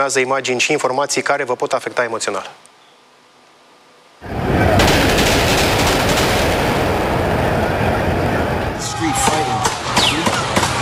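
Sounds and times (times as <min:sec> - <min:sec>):
speech: 0:00.0 - 0:02.7
crowd commotion on a crowded street: 0:04.2 - 0:10.7
gunshots fired in a crowded street: 0:04.4 - 0:10.7
people shouting on a crowded street: 0:06.6 - 0:10.7.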